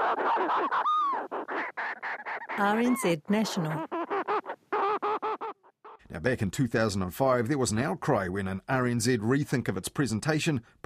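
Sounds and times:
Little Shearwater harsh nasal cackling calls: 0.0 - 6.1
speech: 0.2 - 1.2, 2.6 - 3.9, 6.2 - 10.8.

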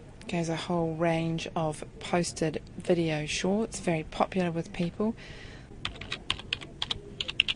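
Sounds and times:
speech: 0.3 - 5.5
quick typing on a computer keyboard: 5.8 - 7.5.

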